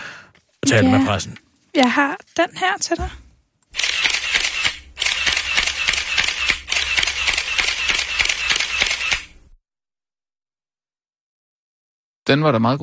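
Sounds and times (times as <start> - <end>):
speech: 0.7 - 3.2, 12.3 - 12.8
camera shutters clicking at a press conference: 3.7 - 9.4.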